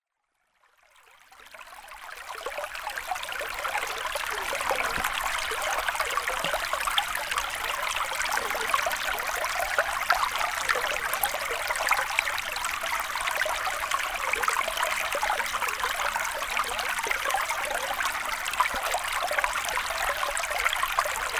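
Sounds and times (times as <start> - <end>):
creek flowing: 1.3 - 21.3.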